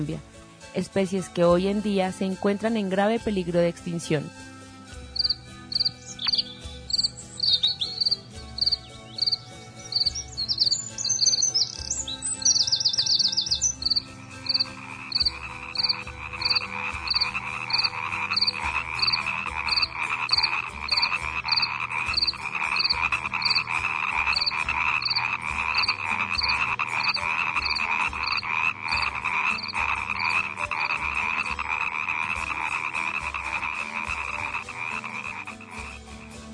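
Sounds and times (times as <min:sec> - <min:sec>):
speech: 0:00.0 - 0:04.5
dense chorus of frogs croaking: 0:05.2 - 0:36.4.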